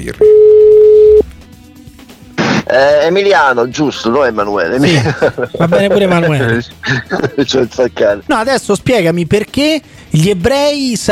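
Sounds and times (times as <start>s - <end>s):
speech: 0.0s - 0.4s, 2.7s - 11.1s
telephone dial tone: 0.2s - 1.3s
laughter: 3.8s - 7.7s.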